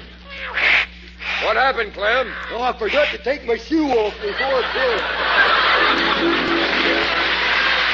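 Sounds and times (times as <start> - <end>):
cat yowling on a fence: 0.3 - 0.9
speech: 1.5 - 5.3
laughter: 3.9 - 7.9.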